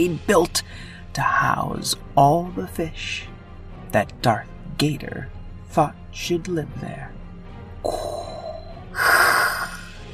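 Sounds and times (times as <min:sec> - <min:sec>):
speech: 0:00.0 - 0:03.3, 0:03.9 - 0:07.1, 0:07.8 - 0:08.3
heavy labored raspy wheezing breathing: 0:07.8 - 0:10.1.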